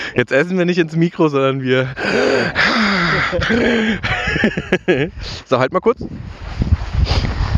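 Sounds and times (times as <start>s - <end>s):
speech: 0.2s - 7.4s
heavy panting breaths with groan-like exhalations: 1.8s - 4.1s
laughter: 2.0s - 5.2s.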